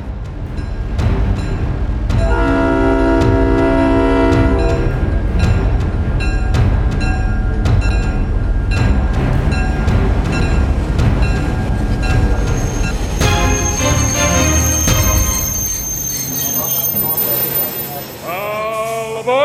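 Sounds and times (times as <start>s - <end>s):
train rumbling on rails pulling into a station: 0.0s - 19.4s
deep train horn blaring: 2.2s - 5.0s, 13.2s - 16.6s.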